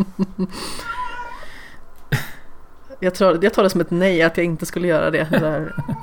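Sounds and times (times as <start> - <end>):
speech: 0.0 - 0.9, 3.0 - 6.0
cat meowing loudly: 0.8 - 1.5
laughter: 5.2 - 6.0.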